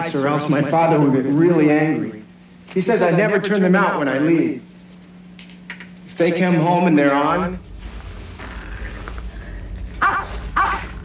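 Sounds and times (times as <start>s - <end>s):
speech: 0.0s - 4.7s, 6.2s - 7.6s
low steady hum: 0.0s - 11.0s
dog barking: 10.0s - 11.0s.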